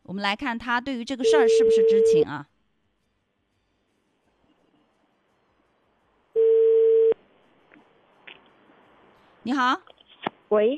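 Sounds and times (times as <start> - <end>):
speech: 0.1 - 2.5, 9.5 - 10.7
telephone ringback tone: 1.2 - 2.2, 6.4 - 7.2
phone line hiss: 6.4 - 7.2.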